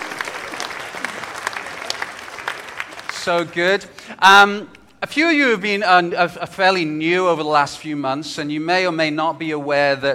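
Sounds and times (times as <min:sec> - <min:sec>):
audience applause: 0:00.0 - 0:04.0
speech: 0:03.2 - 0:10.1.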